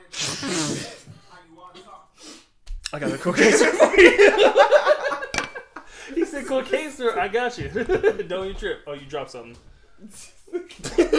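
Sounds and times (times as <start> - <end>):
person sneezing: 0.0 - 1.1
speech: 2.9 - 5.2, 6.1 - 11.1
laughter: 3.0 - 8.6, 10.4 - 11.1.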